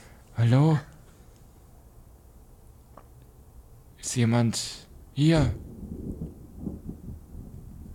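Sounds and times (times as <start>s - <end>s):
speech: 0.4s - 0.9s, 4.1s - 5.7s
heavy rain downpour: 4.0s - 7.9s.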